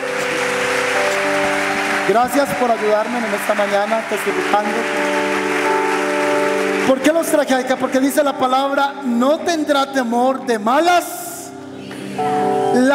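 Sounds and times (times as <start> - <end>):
audience applauding: 0.0 - 8.8
sustained keyboard chords: 0.0 - 12.9
speech: 2.1 - 5.6, 6.9 - 11.2, 12.2 - 12.5.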